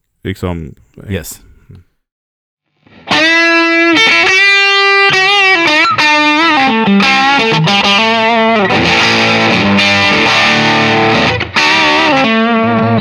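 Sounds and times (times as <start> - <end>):
speech: 0.2 - 1.9, 6.6 - 10.0
heavily distorted electric guitar playing a lead line: 3.4 - 12.9.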